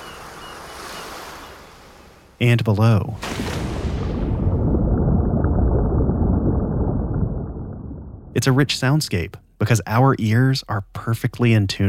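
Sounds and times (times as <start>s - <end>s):
ocean surf washing in: 0.0s - 6.4s
faint breezy rush over the water: 0.0s - 11.8s
speech: 2.4s - 3.7s, 8.4s - 11.8s.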